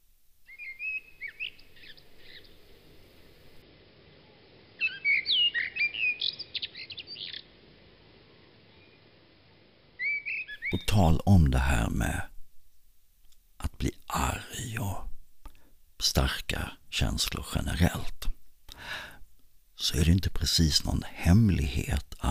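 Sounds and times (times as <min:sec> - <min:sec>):
faint outdoor hush: 0:00.0 - 0:22.2
blackbird singing: 0:00.4 - 0:02.8, 0:04.8 - 0:07.5, 0:10.0 - 0:11.9
speech: 0:10.9 - 0:12.3, 0:13.8 - 0:15.1, 0:16.0 - 0:18.2, 0:19.8 - 0:22.2.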